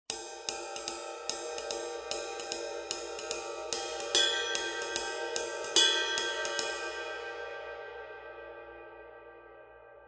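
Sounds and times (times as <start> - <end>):
dry ride cymbal bell: 0.1 - 7.7.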